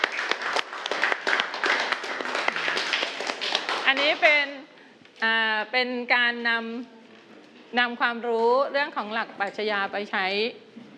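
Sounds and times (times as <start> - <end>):
room full of people clapping in a classroom: 0.0 - 4.5
speech: 3.9 - 4.6, 5.2 - 7.0, 7.7 - 10.6.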